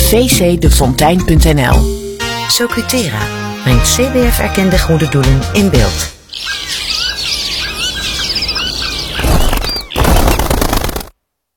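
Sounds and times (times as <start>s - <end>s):
speech: 0.1s - 6.8s
dense chorus of many birds chirping and calling: 3.5s - 11.0s
flock's wings flapping in takeoff: 6.4s - 11.2s.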